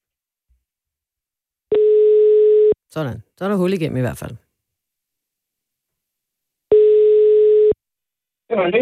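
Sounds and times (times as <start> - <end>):
telephone ringing tone on the line: 1.7 - 2.8, 6.7 - 7.8
speech: 2.9 - 4.5, 8.5 - 8.7.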